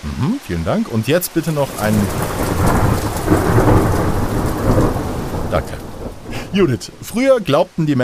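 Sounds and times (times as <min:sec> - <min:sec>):
speech: 0:00.0 - 0:03.6, 0:06.6 - 0:08.0
heavy rain pouring: 0:00.1 - 0:08.0
deep thunder rumbling: 0:01.1 - 0:07.4.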